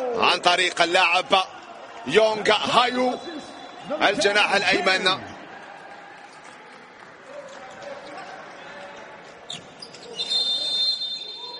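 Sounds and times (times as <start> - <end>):
speech: 0.2 - 5.3
murmur of a stadium crowd during a football match: 1.2 - 11.5
referee's whistle blast during a football match: 10.0 - 11.5.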